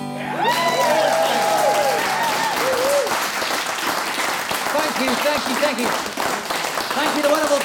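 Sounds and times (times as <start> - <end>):
crowd noise and whoops: 0.2 - 3.5
audience applause: 0.2 - 7.6.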